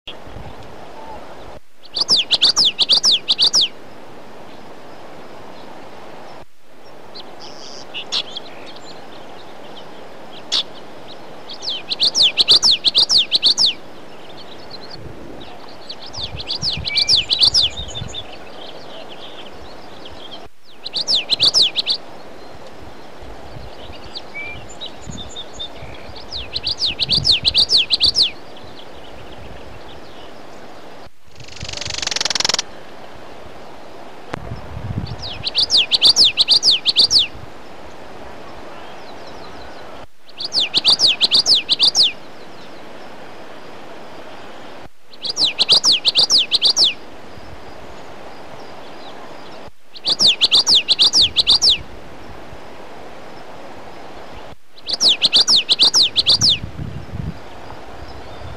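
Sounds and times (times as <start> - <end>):
Common Yellowthroat calling: 0.9 - 3.8, 6.8 - 32.7, 35.1 - 37.4, 38.7 - 43.1, 45.1 - 51.9, 54.4 - 56.6.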